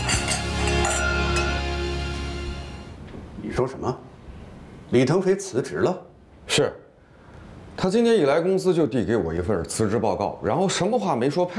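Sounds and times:
glasses clinking in a toast: 0:00.0 - 0:01.7
speech: 0:03.6 - 0:04.1, 0:04.9 - 0:06.8, 0:07.8 - 0:11.5.

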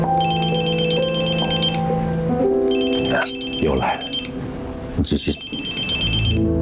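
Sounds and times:
telephone ringing in electronic trilling bursts: 0:00.0 - 0:02.0, 0:02.6 - 0:04.4, 0:05.2 - 0:06.5.

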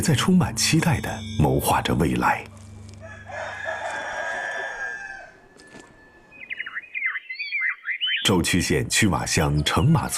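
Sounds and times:
speech: 0:00.0 - 0:02.5, 0:08.3 - 0:10.1
free-roaming flock of chickens chirping under walnut trees: 0:02.5 - 0:08.4
rooster crowing under walnut trees in a rural village: 0:03.0 - 0:06.3.

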